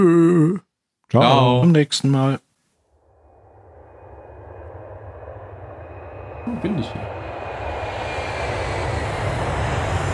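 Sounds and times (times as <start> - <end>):
speech: 0.0 - 2.5, 6.5 - 7.2
airplane engine roar with faint high whine: 3.9 - 10.1.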